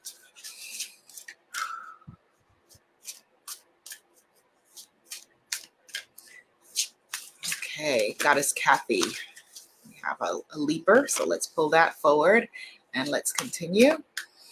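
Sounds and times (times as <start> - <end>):
deck of oracle cards being shuffled: 0.0 - 1.7, 2.6 - 9.8
speech: 7.8 - 9.3, 10.2 - 14.1.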